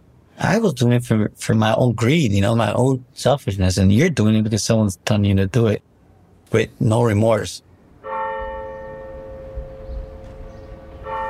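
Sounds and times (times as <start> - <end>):
speech: 0.5 - 5.9, 6.5 - 7.7
church bells ringing: 8.0 - 11.2.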